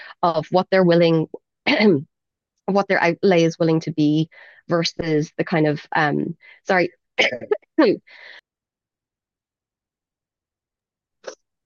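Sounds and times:
speech: 0:00.2 - 0:02.1, 0:02.7 - 0:08.4
person coughing: 0:07.2 - 0:07.7.

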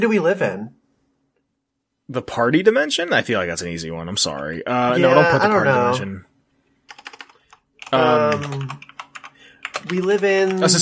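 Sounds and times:
speech: 0:00.0 - 0:00.8, 0:02.1 - 0:06.3, 0:07.9 - 0:08.9, 0:09.8 - 0:10.8
computer keyboard typing: 0:06.9 - 0:10.8.

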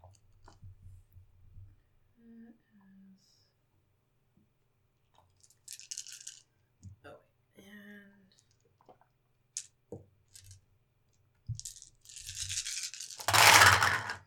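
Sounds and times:
dice being shaken and rolled: 0:05.3 - 0:06.4, 0:09.6 - 0:10.6, 0:11.5 - 0:14.2.

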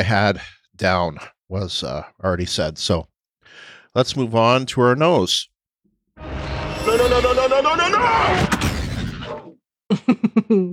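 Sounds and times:
speech: 0:00.0 - 0:05.5, 0:06.2 - 0:08.7, 0:09.9 - 0:10.7
explosion sound effect: 0:06.2 - 0:09.5.

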